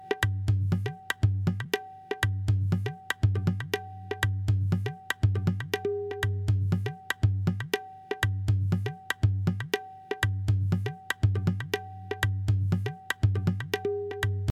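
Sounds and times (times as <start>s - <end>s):
tabla drumming: 0.0s - 14.5s.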